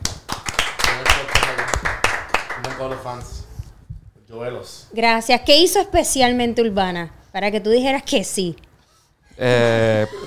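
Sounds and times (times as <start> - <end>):
rapid hand clapping from a few people: 0.0 - 3.3
speech: 2.8 - 3.5, 4.3 - 8.7, 9.4 - 10.2.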